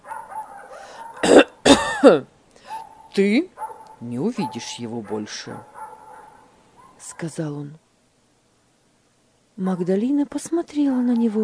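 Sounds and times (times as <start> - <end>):
man giving short throaty coughs: 1.2 - 2.3
speech: 2.0 - 2.3, 3.2 - 5.7, 7.1 - 7.8, 9.6 - 11.4.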